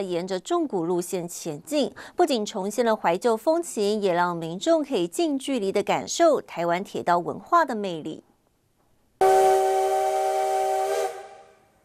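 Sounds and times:
speech: 0.0 - 8.3
steam locomotive whistle at the Yuli railway station platform in Hualien Taiwan: 9.2 - 11.8.

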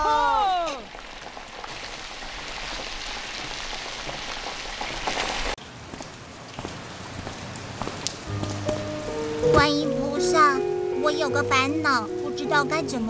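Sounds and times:
steady rain spattering on surfaces: 0.0 - 11.3
speech: 11.3 - 13.0.

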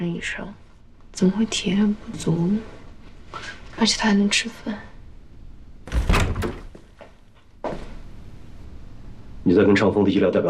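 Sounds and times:
speech: 0.0 - 0.6, 1.2 - 4.9, 9.5 - 10.4
door pushed open abruptly with heavy thunk and rattling swing: 5.8 - 6.8
soft knock-like door bump as it settles: 5.9 - 6.9.

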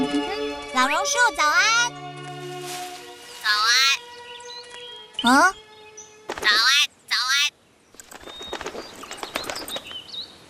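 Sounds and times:
speech: 0.8 - 2.0, 5.2 - 5.6, 6.4 - 6.8
myna bird calling: 3.2 - 10.4.

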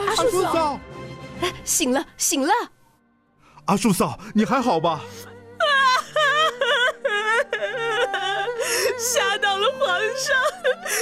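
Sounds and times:
speech: 0.2 - 2.8, 3.7 - 5.3
woman crying: 5.5 - 11.0.

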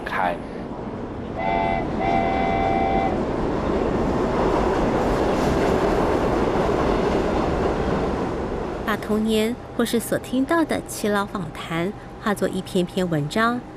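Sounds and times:
train rumbling and rattling on rails at a station: 0.0 - 13.7
speech: 0.1 - 0.5, 1.4 - 2.2, 8.9 - 13.7
train horn toot at a station: 1.4 - 3.2.

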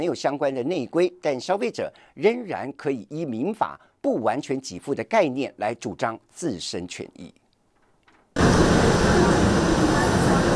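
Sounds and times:
speech: 0.0 - 7.4
train pulling into a station: 8.4 - 10.5.

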